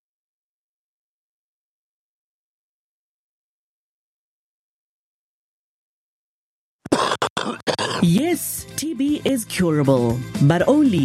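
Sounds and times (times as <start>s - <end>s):
person coughing harshly: 6.9s - 8.1s
speech: 7.5s - 11.0s.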